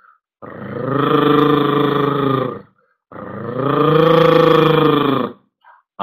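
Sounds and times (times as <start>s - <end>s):
person imitating a dog's growl: 0.4s - 5.4s.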